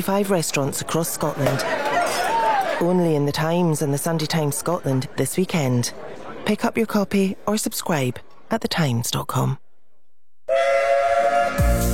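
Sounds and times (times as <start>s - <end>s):
speech: 0.0s - 9.6s
A1 class steam locomotive whistle: 10.5s - 11.9s.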